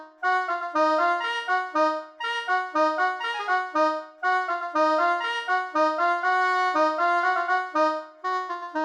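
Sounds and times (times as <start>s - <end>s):
soprano brass instrument: 0.2s - 8.7s.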